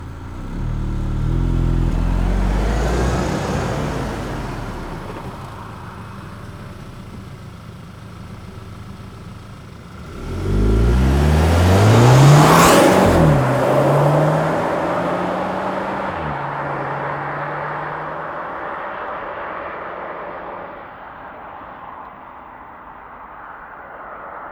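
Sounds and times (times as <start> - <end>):
Audi A4 allroad 2.0 TFSI reversing: 0.0 - 18.9.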